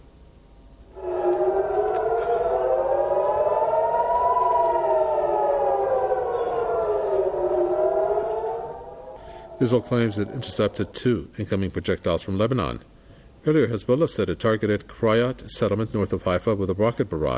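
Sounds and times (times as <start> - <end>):
air raid siren wailing: 0.9 - 11.4
speech: 9.6 - 17.3.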